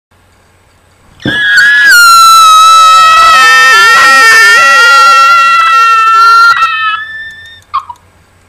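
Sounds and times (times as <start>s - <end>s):
person screaming: 1.3s - 7.4s.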